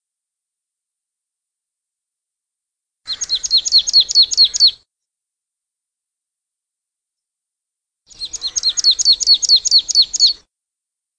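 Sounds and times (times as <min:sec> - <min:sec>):
marsh tit calling: 0:03.1 - 0:04.8, 0:08.1 - 0:10.4.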